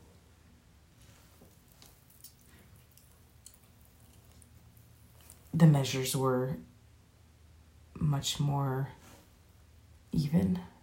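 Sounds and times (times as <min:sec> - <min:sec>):
steady low hum: 0:00.0 - 0:10.8
water dripping slowly from a tub: 0:01.4 - 0:05.6
speech: 0:05.6 - 0:06.7, 0:08.1 - 0:09.0, 0:10.1 - 0:10.7.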